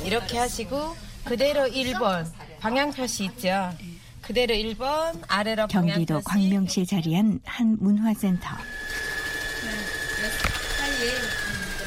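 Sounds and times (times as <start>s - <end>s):
speech: 0.1s - 10.4s
sewing machine running: 8.4s - 11.8s.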